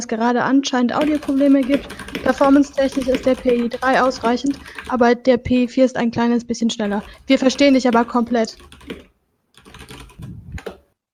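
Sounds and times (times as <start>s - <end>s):
speech: 0.0s - 9.1s
typing on a computer keyboard: 1.0s - 5.7s, 6.8s - 10.8s.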